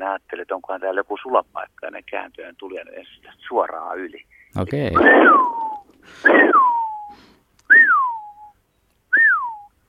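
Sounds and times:
speech: 0:00.0 - 0:07.8
person whistling in imitation of a Eurasian wigeon: 0:05.0 - 0:08.5, 0:09.1 - 0:09.7.

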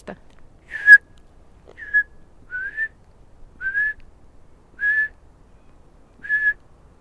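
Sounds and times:
person whistling with the lips imitating a Eurasian bullfinch call: 0:00.7 - 0:01.0, 0:01.8 - 0:02.9, 0:03.6 - 0:04.0, 0:04.8 - 0:05.1, 0:06.2 - 0:06.6.

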